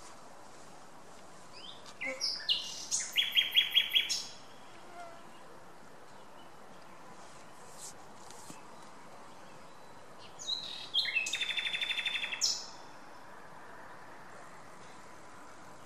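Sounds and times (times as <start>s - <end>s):
Luscinia megarhynchos singing: 1.3s - 13.2s.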